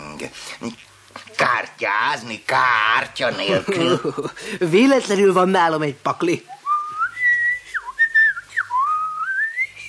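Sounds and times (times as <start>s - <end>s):
speech: 0.2s - 6.6s
whistled tune with sliding, wavering pitches: 6.6s - 9.8s.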